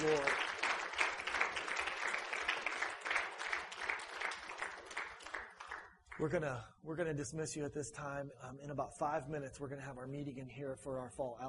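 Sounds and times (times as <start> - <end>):
congregation applauding during a church service: 0.0 - 6.3
speech: 6.2 - 11.4.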